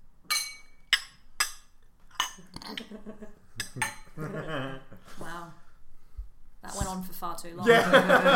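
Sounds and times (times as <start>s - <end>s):
glasses clinking in a toast: 0.2s - 2.6s, 3.6s - 4.2s
speech: 2.7s - 5.6s, 6.6s - 8.3s
laughter: 4.2s - 5.0s, 7.6s - 8.3s.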